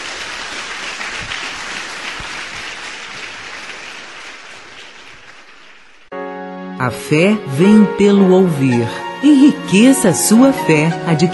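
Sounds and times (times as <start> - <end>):
church congregation clapping in praise during a worship service: 0.0 - 6.2
speech: 6.8 - 11.3.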